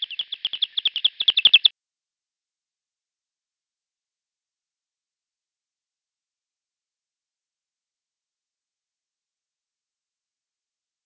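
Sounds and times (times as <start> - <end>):
Myotis bat calls: 0.0 - 1.7.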